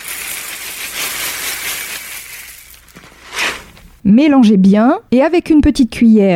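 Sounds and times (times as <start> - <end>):
cornflakes and marshmallow pieces pouring into a chocolate mixture in a bowl: 0.0 - 3.7
speech: 4.0 - 6.3.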